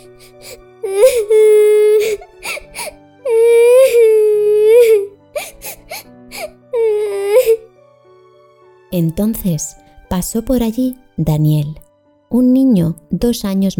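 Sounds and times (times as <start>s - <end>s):
girl crying in long wailing high-pitched sobs: 0.0s - 7.7s
speech: 9.0s - 13.7s.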